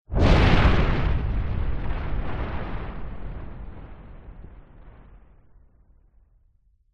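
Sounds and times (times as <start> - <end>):
thunder and lightning: 0.0 - 6.2.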